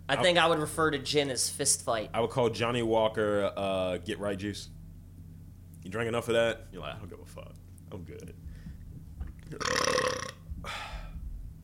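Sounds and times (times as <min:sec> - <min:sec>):
speech: 0:00.1 - 0:04.8, 0:05.9 - 0:08.5, 0:09.5 - 0:10.9
person belching: 0:09.5 - 0:10.4.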